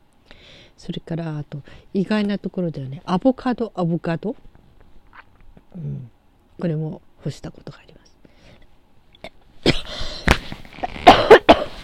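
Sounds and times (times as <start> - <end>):
speech: 0.8 - 4.5, 5.8 - 8.0
person coughing with sharp explosive hacks: 9.2 - 11.8.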